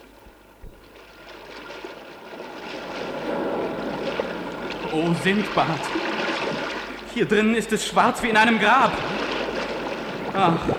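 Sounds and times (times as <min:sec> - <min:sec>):
rushing river water beneath a drifting raft of ship planks: 0:00.0 - 0:10.7
broad wash of noise: 0:02.2 - 0:10.7
speech: 0:04.9 - 0:06.2, 0:07.2 - 0:09.2, 0:10.4 - 0:10.7.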